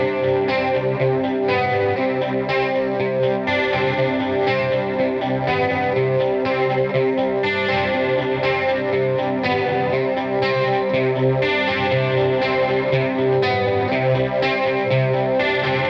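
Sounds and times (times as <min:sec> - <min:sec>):
guitar: 0:00.0 - 0:15.8.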